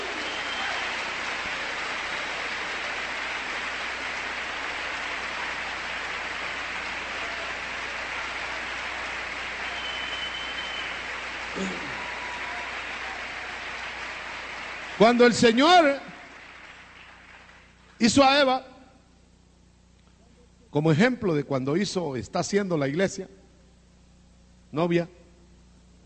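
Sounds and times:
congregation applauding at a church service: 0.0 - 18.3
speech: 11.6 - 11.8, 15.0 - 16.1, 18.0 - 18.7, 20.7 - 23.4, 24.7 - 25.2.

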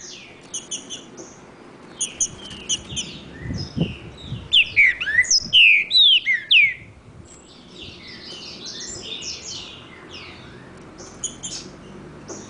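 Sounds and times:
green-winged saltator singing in the woods: 2.0 - 6.9.

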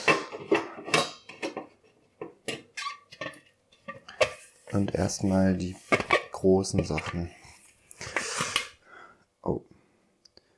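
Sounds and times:
dishes clattering: 0.0 - 4.4
speech: 4.7 - 7.4.

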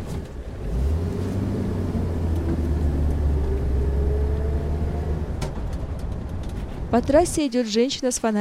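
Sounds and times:
van engine rumble on a road: 0.0 - 7.4
road noise: 0.0 - 8.3
speech: 6.9 - 8.3.

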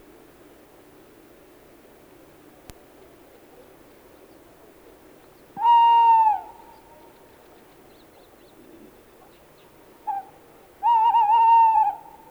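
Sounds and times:
Tawny owl hooting in Sweden: 5.6 - 6.6, 10.1 - 12.2.

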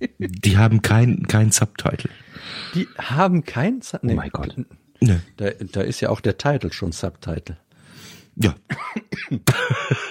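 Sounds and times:
speech: 0.0 - 10.0
person coughing: 8.7 - 10.0.

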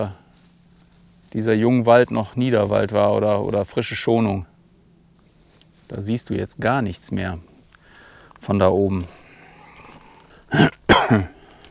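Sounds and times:
speech: 0.0 - 0.2, 1.3 - 4.5, 5.9 - 7.5, 8.4 - 9.2, 10.5 - 11.4
throat clearing while coughing up phlegm: 10.5 - 11.4.

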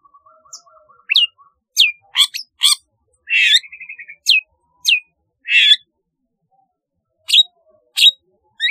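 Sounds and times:
long-tailed shrike singing: 0.1 - 5.8.

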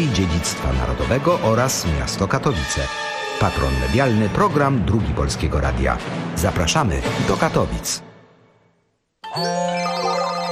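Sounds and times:
speech: 0.0 - 8.1, 9.3 - 9.8
phone ringtone: 9.2 - 10.4.

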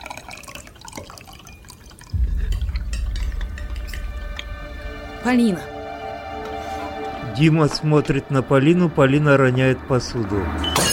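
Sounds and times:
liquid poured from a carafe into a wine glass: 0.0 - 3.4
speech: 5.2 - 5.7, 7.4 - 10.9.

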